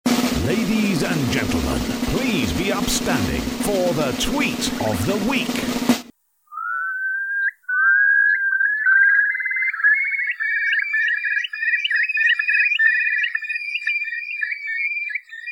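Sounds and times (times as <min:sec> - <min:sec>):
speech: 0:01.0 - 0:05.9
Eurasian curlew call across the mudflats of Derby Haven, Isle of Man: 0:06.5 - 0:15.5.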